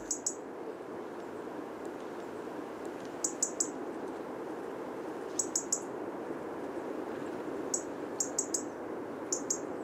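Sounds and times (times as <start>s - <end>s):
European robin ticking alarm call: 0.0s - 0.4s, 3.2s - 3.7s, 7.7s - 8.7s, 9.3s - 9.7s
steady hiss: 0.0s - 9.8s.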